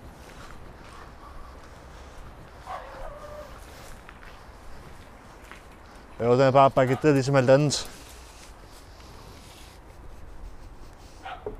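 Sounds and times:
outdoor noise: 0.0 - 11.5
dog barking: 0.8 - 1.8, 2.6 - 3.6, 6.9 - 7.2, 11.2 - 11.5
speech: 6.2 - 8.0.

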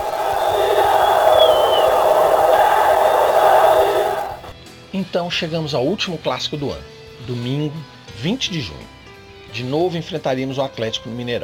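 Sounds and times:
football supporters chanting and roaring at a stadium: 0.0 - 4.5
speech: 5.1 - 11.4.

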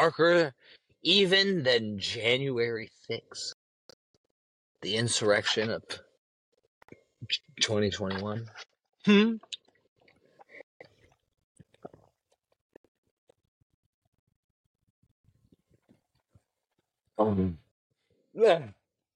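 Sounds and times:
speech: 0.0 - 3.6, 4.8 - 6.0, 7.2 - 9.6, 17.2 - 17.6, 18.4 - 18.8
person drinking water: 8.1 - 12.8.

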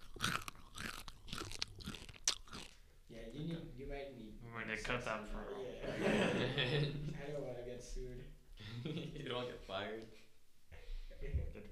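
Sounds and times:
crunchy chewing of frosted mini wheats cereal: 0.0 - 2.8
speech: 3.4 - 10.2
laughter: 5.8 - 7.2.

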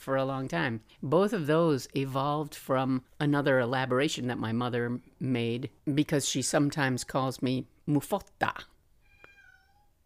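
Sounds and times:
speech: 0.0 - 8.7
cat meowing: 9.0 - 10.0.

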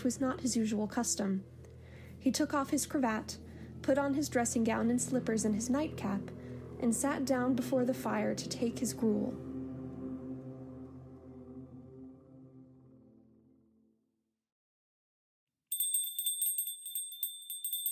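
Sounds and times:
speech: 0.0 - 1.6, 2.2 - 9.5
low droning tones: 0.0 - 14.0
old hanging bell swaying and ringing: 15.7 - 17.9.

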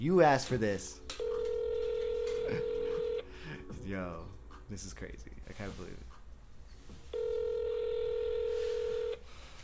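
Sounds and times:
speech: 0.0 - 1.0, 2.5 - 2.7, 3.9 - 6.1
faint noise: 0.0 - 9.6
outgoing phone call ringing tone: 1.2 - 3.3, 7.1 - 9.2.

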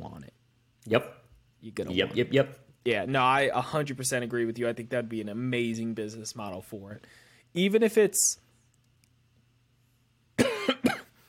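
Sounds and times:
speech: 0.9 - 8.4
person getting over a cough coughing: 10.4 - 11.2.

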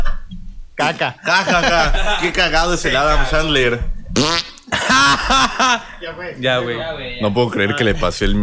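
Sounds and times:
speech: 0.8 - 4.5, 5.1 - 8.4
laughter: 1.2 - 3.8, 4.6 - 7.0
wet flapping fart-like noises made by squeezing an armpit: 3.4 - 5.5.

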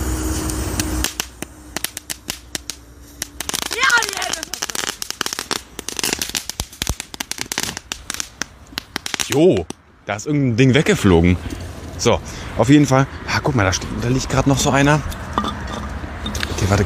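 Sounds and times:
small firecracker fizzing and popping: 0.0 - 9.8
speech: 9.3 - 15.2, 16.7 - 16.8.

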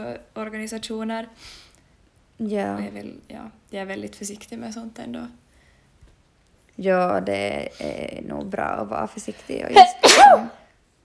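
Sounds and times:
speech: 0.0 - 1.7, 2.4 - 5.4, 6.8 - 10.6
person sneezing: 9.8 - 10.6.

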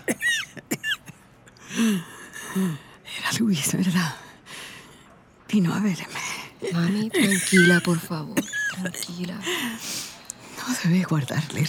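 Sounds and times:
fatigued woman coughing sharply: 0.0 - 1.3, 6.6 - 9.6
speech: 3.5 - 4.3, 5.6 - 10.0, 10.7 - 11.6.

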